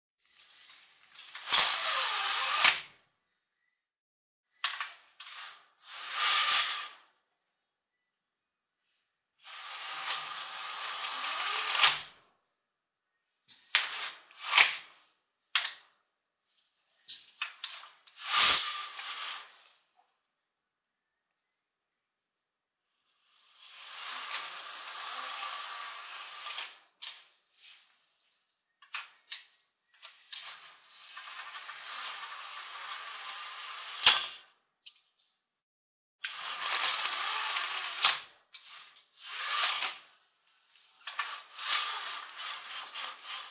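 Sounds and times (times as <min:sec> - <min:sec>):
window blinds: 0:00.2 - 0:03.0, 0:04.7 - 0:07.2, 0:08.8 - 0:12.2, 0:13.5 - 0:15.9, 0:16.5 - 0:20.0, 0:22.9 - 0:28.3, 0:28.9 - 0:34.5, 0:36.2 - 0:43.4.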